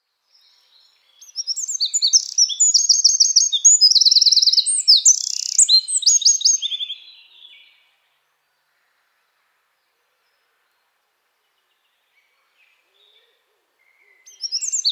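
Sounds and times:
Eurasian wren song, Troglodytes troglodytes: 0.4s - 7.7s, 14.2s - 14.8s.

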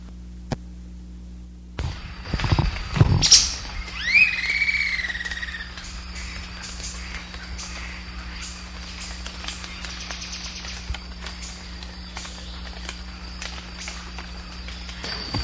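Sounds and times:
steady hum: 0.0s - 15.4s
insect drone: 1.0s - 15.4s
tape playback: 1.8s - 4.2s, 5.2s - 15.4s
Campylorhynchus wren song: 1.8s - 15.4s
harsh raspy bird call notes: 3.3s - 10.8s.

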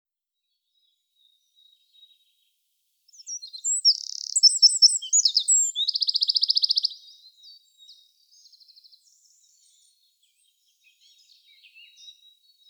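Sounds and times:
Eurasian wren Troglodytes troglodytes singing quick tinkling notes and trills: 3.1s - 12.6s.

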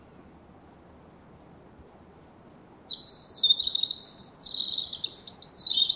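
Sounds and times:
European robin Erithacus rubecula singing high whistled phrases and trills: 2.9s - 5.9s.

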